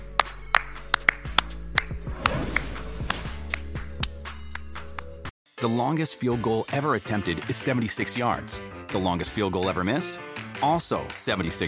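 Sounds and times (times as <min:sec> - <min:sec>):
sharp hand claps: 0:00.1 - 0:05.2
speech: 0:05.6 - 0:11.6.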